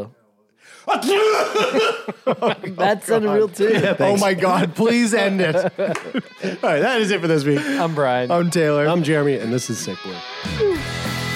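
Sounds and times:
speech: 0:00.0 - 0:11.1
loud human sneeze: 0:00.9 - 0:02.1
laughter: 0:00.9 - 0:08.5.

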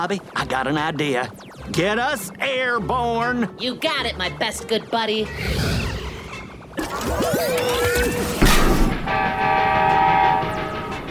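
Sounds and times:
speech: 0:00.0 - 0:05.7, 0:07.0 - 0:09.8
long steady train horn blast: 0:09.2 - 0:11.0.

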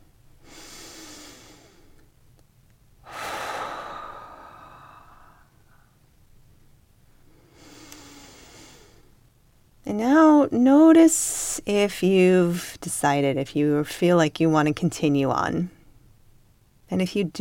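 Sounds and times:
slow breathing with long inhales and exhales: 0:00.4 - 0:02.1, 0:03.0 - 0:06.0, 0:07.1 - 0:09.2
speech: 0:10.0 - 0:15.8, 0:16.9 - 0:17.3.

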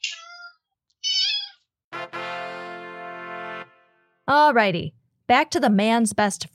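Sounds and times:
cat meowing and yowling: 0:00.0 - 0:01.6
speech: 0:04.3 - 0:06.5.

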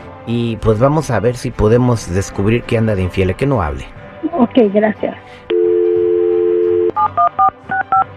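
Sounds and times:
speech: 0:00.2 - 0:05.5
telephone dial tone: 0:05.5 - 0:08.1.

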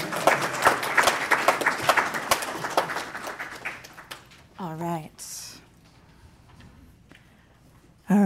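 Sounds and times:
audience applause: 0:00.0 - 0:04.6.

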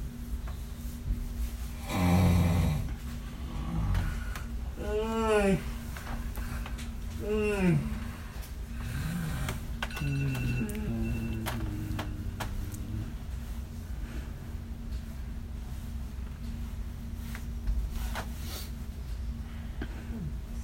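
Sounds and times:
steady low mechanical hum: 0:00.0 - 0:20.6
loud snoring: 0:01.8 - 0:04.3, 0:08.8 - 0:13.3.

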